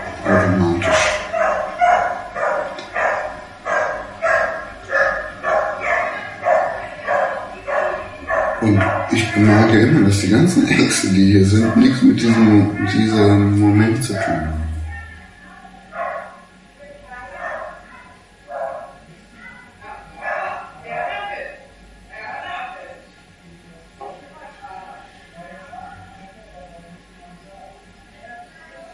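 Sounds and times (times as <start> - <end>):
murmur of voices: 0.0 - 28.9
dog barking in short bursts: 0.2 - 10.0, 11.5 - 13.1, 15.9 - 16.5, 17.3 - 19.0, 19.8 - 21.1
speech: 9.5 - 14.6.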